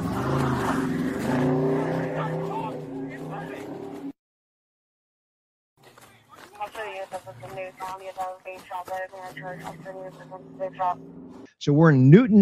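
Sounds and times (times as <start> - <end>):
agitated voices shouting: 0.0 - 3.7
car engine roaring as the car drags a police officer: 0.0 - 4.1, 7.1 - 11.5
road noise: 0.0 - 4.2, 5.8 - 11.9
speech: 7.9 - 12.4.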